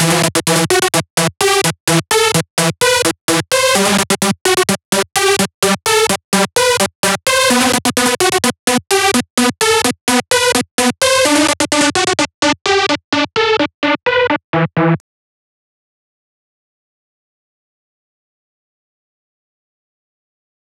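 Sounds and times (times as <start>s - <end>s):
future rave synth loop in E minor at 128 BPM: 0.0s - 15.0s.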